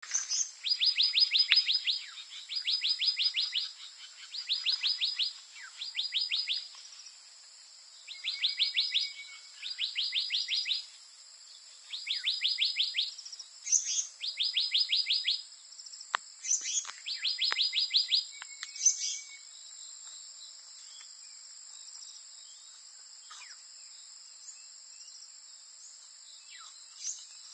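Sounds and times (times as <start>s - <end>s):
black-naped monarch calling: 0.0s - 7.1s, 8.0s - 10.9s, 11.8s - 15.5s, 16.4s - 19.5s.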